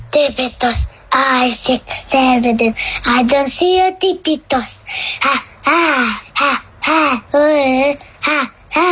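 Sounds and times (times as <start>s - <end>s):
speech: 0.1s - 8.8s
seven-year-old boy imitating a monster's singing with raspy croaks: 5.2s - 8.8s.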